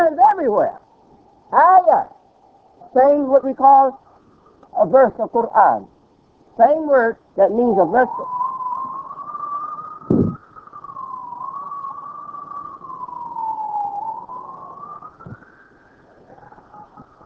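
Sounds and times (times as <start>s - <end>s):
speech: 0.4s - 0.8s, 1.5s - 2.2s, 2.9s - 4.0s, 4.7s - 5.9s, 6.6s - 8.4s
emergency vehicle siren wailing: 7.8s - 17.2s
short thumps: 10.1s - 10.4s.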